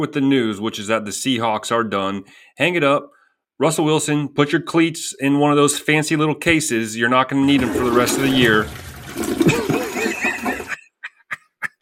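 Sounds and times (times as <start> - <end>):
speech: 0.0 - 9.6
short gurgling blips: 7.4 - 10.8
toilet flushing: 7.4 - 10.8
laughter: 9.3 - 11.8.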